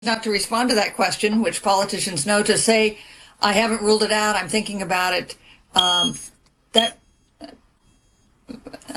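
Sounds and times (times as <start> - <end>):
speech: 0.0 - 7.6, 8.5 - 8.9
smoke alarm chirping: 5.8 - 7.0.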